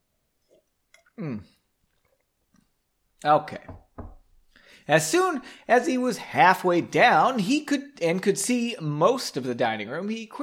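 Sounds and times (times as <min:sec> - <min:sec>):
loud throaty swallowing: 0:00.4 - 0:02.3
person sipping a drink: 0:00.4 - 0:02.8
speech: 0:01.2 - 0:01.6, 0:03.2 - 0:04.1, 0:04.9 - 0:10.4.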